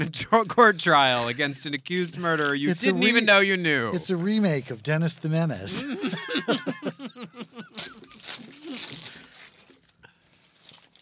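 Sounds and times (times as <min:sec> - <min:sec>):
speech: 0:00.0 - 0:06.9
wrapping paper being crumpled and torn: 0:01.1 - 0:03.8, 0:07.4 - 0:11.0
laughter: 0:02.0 - 0:04.6, 0:05.7 - 0:08.8.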